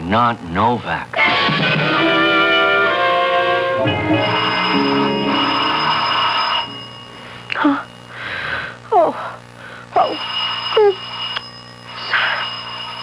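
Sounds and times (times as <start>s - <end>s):
speech: 0.1s - 2.3s, 3.8s - 5.7s, 7.6s - 7.9s, 8.9s - 9.3s
doorbell ringing in a long buzzing peal: 2.0s - 8.3s, 9.9s - 13.0s.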